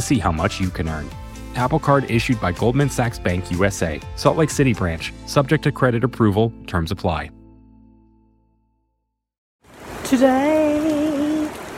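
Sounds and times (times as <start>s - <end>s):
speech: 0.0s - 7.4s, 10.1s - 10.6s
steady rain: 9.6s - 11.7s.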